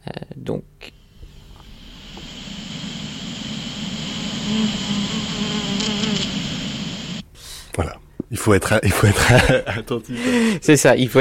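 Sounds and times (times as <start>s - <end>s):
speech: 0.5s - 0.7s, 8.4s - 11.2s
bee buzzing in flight through a sunflower field: 1.0s - 7.2s.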